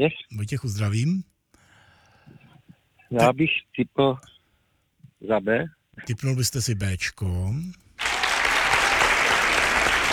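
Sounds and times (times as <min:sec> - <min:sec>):
speech: 0:00.0 - 0:01.3, 0:03.1 - 0:04.3, 0:05.2 - 0:07.8
crowd applauding: 0:08.0 - 0:10.1.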